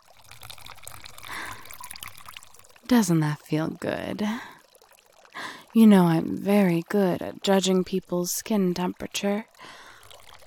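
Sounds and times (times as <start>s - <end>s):
hot water poured over a person's back on a massage table, splashing: 0.0s - 10.4s
speech: 2.9s - 4.5s, 5.8s - 9.8s.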